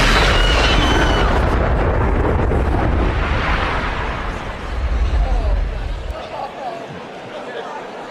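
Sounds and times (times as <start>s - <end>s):
loud booming explosion: 0.0s - 6.1s.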